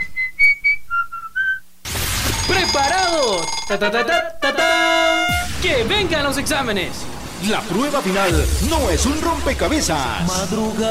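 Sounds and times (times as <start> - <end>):
bright human whistle stepping from higher to lower notes: 0.0 - 1.7
burst of broadband noise: 1.8 - 3.3, 5.0 - 10.6
speech: 2.7 - 10.8.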